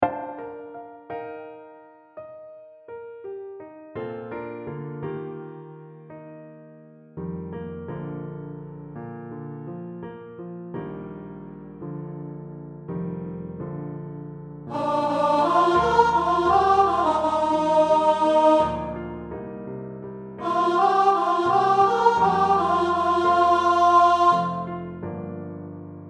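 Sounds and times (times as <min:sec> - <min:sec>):
upper voices: 0:14.7 - 0:19.0, 0:20.4 - 0:24.8.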